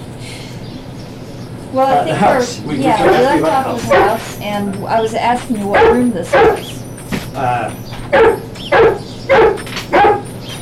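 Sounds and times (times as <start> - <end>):
speech: 1.7 - 6.7, 7.4 - 9.6
dog barking in a room of a house: 2.9 - 4.4, 5.7 - 6.8, 8.1 - 10.4.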